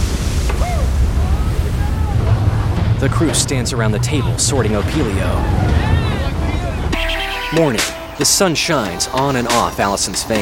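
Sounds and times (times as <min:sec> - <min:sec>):
big waves slamming into a boat at night: 0:00.0 - 0:10.4
speech: 0:03.0 - 0:06.0, 0:07.5 - 0:10.4.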